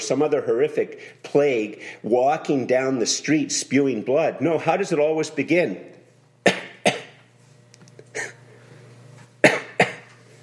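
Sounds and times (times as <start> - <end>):
speech: 0.1 - 6.0
person giving small light coughs: 6.4 - 7.2, 8.1 - 8.5, 9.4 - 10.2.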